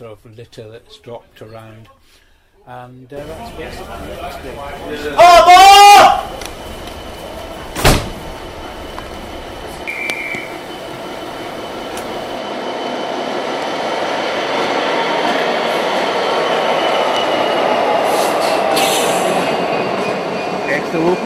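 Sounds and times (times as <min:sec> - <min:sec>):
speech: 0:00.0 - 0:06.5
passenger train rolling along the rails: 0:03.2 - 0:21.2
brief high train wheel squeal: 0:06.3 - 0:13.1
sharp clunk of a passenger train: 0:07.8 - 0:08.2.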